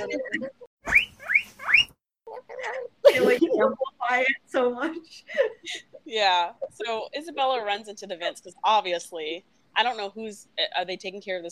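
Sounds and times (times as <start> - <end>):
speech: 0.0 - 0.6, 3.3 - 11.5
guinea pig squeaking: 0.9 - 2.9
brief voice fragment: 3.1 - 4.0.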